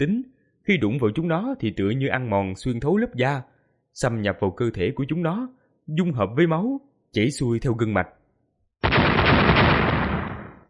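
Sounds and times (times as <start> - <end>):
speech: 0.0 - 8.2
loud explosive roar of a fantasy battle blast: 8.8 - 10.6.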